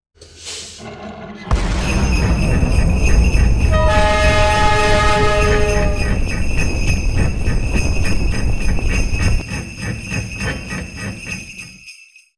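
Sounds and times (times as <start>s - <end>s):
train leaving: 1.5s - 9.4s.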